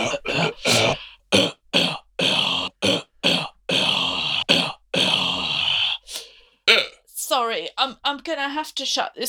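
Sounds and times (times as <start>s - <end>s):
harsh rasping hacking cough: 0.0s - 7.0s
speech: 7.8s - 9.2s.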